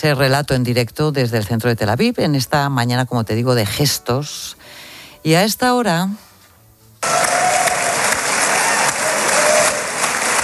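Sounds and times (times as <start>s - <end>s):
speech: 0.0s - 6.2s
faint cheers from parliament crowd: 7.0s - 10.4s
large crowd applauding in parliament: 7.0s - 10.4s.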